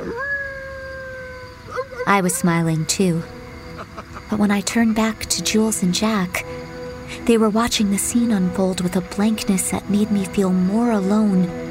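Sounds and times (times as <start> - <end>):
loud enthusiastic howl: 0.0 - 3.3
speech: 2.1 - 3.4, 4.3 - 6.5, 7.2 - 11.6.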